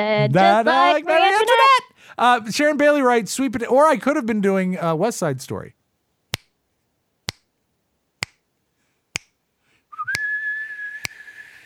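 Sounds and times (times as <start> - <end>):
speech: 0.0 - 5.8
crisp finger snaps: 6.4 - 6.6, 7.3 - 7.5, 8.2 - 8.4, 9.2 - 9.4, 10.1 - 10.3, 11.0 - 11.3
thin wavering whistled tune: 9.9 - 11.6.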